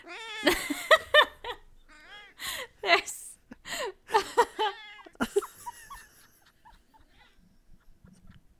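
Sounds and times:
female cat meowing in chattering yowls and trills: 0:00.0 - 0:00.6, 0:01.9 - 0:02.4, 0:04.6 - 0:05.2
speech: 0:00.0 - 0:01.0.

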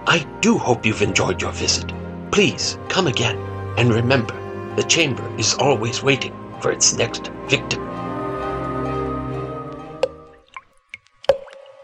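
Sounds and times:
low sustained droning tone: 0:00.0 - 0:10.1
speech: 0:00.1 - 0:08.0
dripping blood sound effect: 0:09.8 - 0:11.8.

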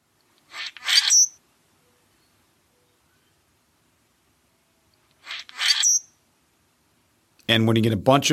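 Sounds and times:
common grackle calls: 0:00.4 - 0:02.0, 0:05.2 - 0:06.2
speech: 0:07.5 - 0:08.3.

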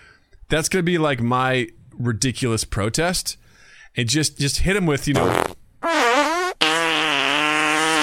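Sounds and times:
speech: 0:00.5 - 0:05.6
fart noises: 0:05.1 - 0:08.0.

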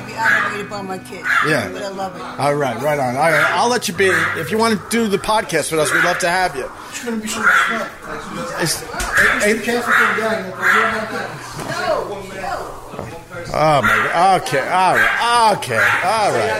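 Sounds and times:
dog barking: 0:00.2 - 0:01.7, 0:03.2 - 0:05.0, 0:05.8 - 0:06.7, 0:07.3 - 0:08.2, 0:09.1 - 0:11.0, 0:13.8 - 0:14.2, 0:14.8 - 0:16.5
speech: 0:00.2 - 0:12.2, 0:13.5 - 0:16.5.

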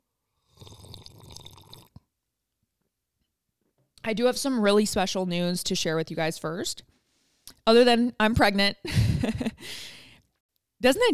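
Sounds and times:
person slurping a drink: 0:00.4 - 0:02.0
person gulping a drink: 0:00.4 - 0:02.1
speech: 0:04.1 - 0:06.9, 0:07.7 - 0:10.0, 0:10.8 - 0:11.1.

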